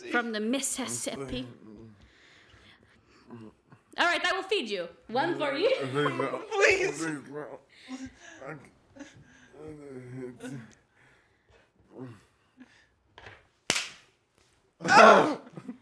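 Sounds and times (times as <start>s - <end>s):
speech: 0.1s - 1.7s, 3.3s - 10.8s, 12.0s - 12.2s, 14.8s - 15.5s
laughter: 5.1s - 10.8s, 14.8s - 15.8s
sharp loud slap: 13.7s - 14.1s
loud startled vocal outburst: 14.8s - 15.5s.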